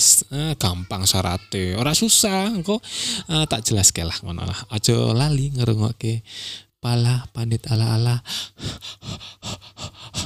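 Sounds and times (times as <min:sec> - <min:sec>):
speech: 0:00.0 - 0:10.2
heavy rapid panting of someone out of breath: 0:08.3 - 0:10.2.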